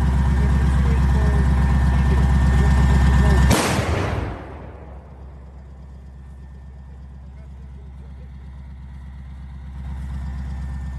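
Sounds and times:
diesel engine idling: 0.0s - 10.9s
self-propelled artillery gun cannon blast: 3.4s - 5.4s.

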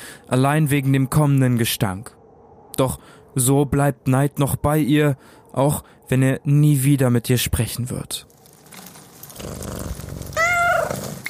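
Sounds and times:
speech: 0.3s - 2.2s, 2.8s - 8.4s, 9.4s - 10.1s
cat purring: 9.2s - 11.2s
cat meowing: 10.2s - 11.2s.

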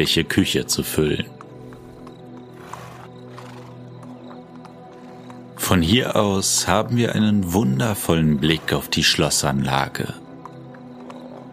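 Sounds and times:
speech: 0.0s - 1.4s, 5.7s - 10.2s
sharp clicks or hoof knocks: 1.3s - 5.6s, 10.3s - 11.5s
horse whinnying and snorting at a castle stud: 1.6s - 3.9s.

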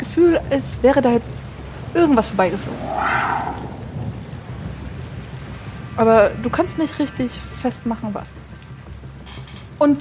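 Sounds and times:
steady dense rain: 0.0s - 9.9s
speech: 0.2s - 3.2s, 6.0s - 8.4s, 9.8s - 9.9s
deep rolling rumble of thunder: 2.1s - 6.2s
brief brighter whoosh: 2.5s - 4.0s.

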